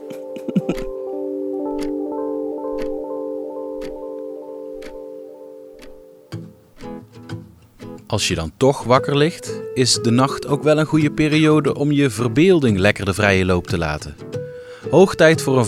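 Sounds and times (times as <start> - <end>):
clock ticking: 0.0 - 9.1
speech: 8.1 - 14.2, 14.9 - 15.6.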